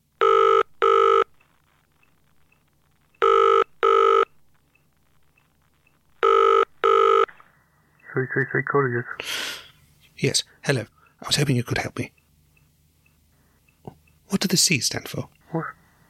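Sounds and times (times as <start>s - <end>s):
faint hum: 0.0s - 16.0s
studio telephone double-burst ring tone calling a courier company: 0.2s - 1.4s, 3.2s - 4.4s, 6.2s - 7.3s
speech: 8.2s - 9.5s, 10.2s - 12.2s, 14.3s - 15.8s.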